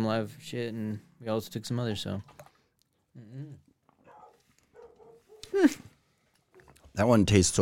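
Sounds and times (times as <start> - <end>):
speech: 0.0 - 2.4, 3.2 - 3.6, 5.5 - 5.9, 7.0 - 7.5
dog whining and yelping: 4.0 - 5.6.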